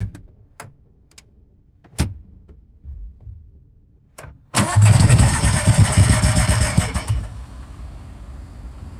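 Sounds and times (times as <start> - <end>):
car engine cranking and stalling: 4.6 - 8.9.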